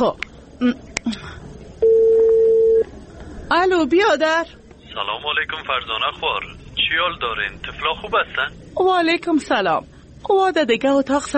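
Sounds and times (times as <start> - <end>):
speech: 0.0 - 1.4, 3.5 - 11.3
mobile phone keypad beeps: 1.8 - 2.9
mobile phone steady continuous tone: 1.8 - 2.9.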